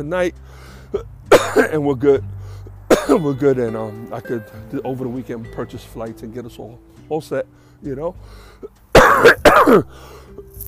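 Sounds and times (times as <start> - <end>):
speech: 0.0 - 2.4, 3.1 - 10.5
breathing: 0.4 - 1.0, 2.3 - 2.8, 7.5 - 8.8, 9.9 - 10.4
person coughing: 1.3 - 1.8, 2.9 - 3.2, 9.0 - 9.9.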